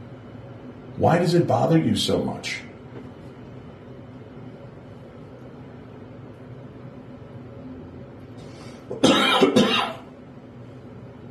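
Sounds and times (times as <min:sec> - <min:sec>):
speech: 0:01.0 - 0:02.7
harsh coughs: 0:08.9 - 0:10.1.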